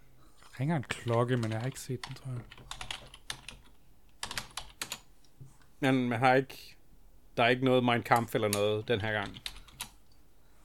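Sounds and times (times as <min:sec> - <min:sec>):
speech: 0:00.6 - 0:02.8, 0:05.8 - 0:06.8, 0:07.4 - 0:09.5
typing on a computer keyboard: 0:01.0 - 0:05.0, 0:08.1 - 0:10.0.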